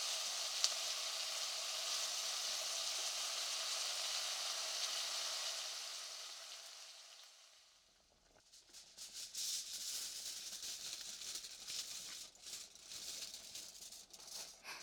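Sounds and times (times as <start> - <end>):
seasoning liquid sizzling in a hot pot: 0.0 - 14.8
crumpled aluminum foil being spread out as a drop lid: 8.5 - 14.8.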